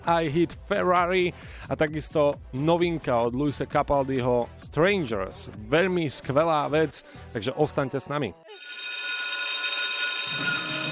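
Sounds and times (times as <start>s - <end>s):
speech: 0.0s - 8.6s
school bell ringing: 8.5s - 10.8s.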